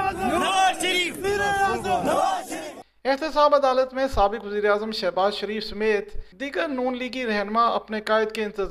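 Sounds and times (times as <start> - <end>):
crowd of party workers chanting slogans at the accountability court in Islamabad: 0.0 - 2.8
speech: 3.0 - 8.6.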